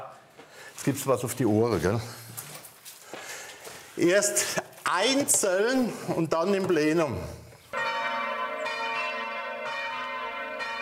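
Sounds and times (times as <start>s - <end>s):
speech: 0.8s - 2.3s, 4.0s - 7.4s
church bells pealing: 7.7s - 10.7s.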